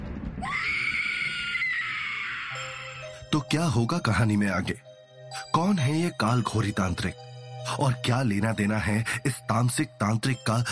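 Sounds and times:
woman screaming in fright: 0.4s - 3.1s
speech: 3.3s - 10.7s.

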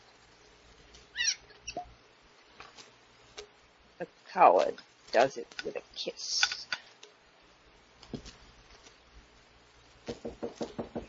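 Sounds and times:
speech: 4.0s - 6.5s
knocking on a door: 10.1s - 11.0s.

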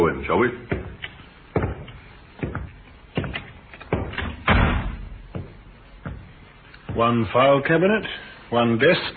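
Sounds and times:
speech: 0.2s - 0.8s, 7.0s - 9.1s
wooden door thudding and clunking while being opened: 1.6s - 6.3s.

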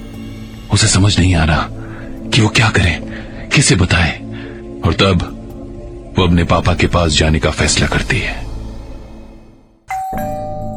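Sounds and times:
speech: 0.7s - 4.2s, 4.8s - 5.4s, 6.2s - 8.5s
doorbell chiming: 9.9s - 10.7s.

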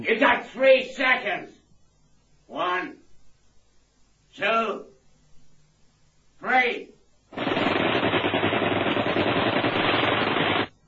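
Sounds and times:
speech: 0.0s - 1.6s, 4.4s - 4.9s, 6.4s - 7.5s
rapid automatic gunfire in a radio drama shootout: 7.3s - 10.7s.

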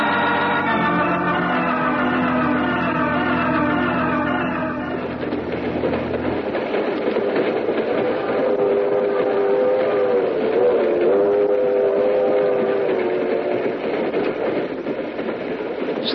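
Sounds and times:
steam train whistle: 0.0s - 5.1s, 8.0s - 13.8s
steam train rumbling: 0.0s - 16.1s.

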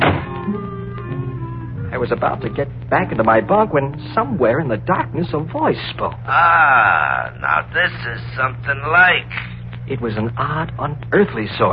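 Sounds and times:
heavy trailer door slamming shut in a thunderstorm: 0.0s - 0.4s
low rumble and hum: 0.0s - 11.7s
speech: 0.5s - 0.8s, 1.9s - 11.7s.

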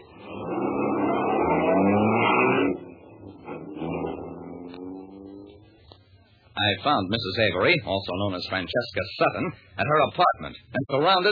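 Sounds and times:
car engine revving: 0.0s - 5.9s
speech: 6.6s - 11.3s.

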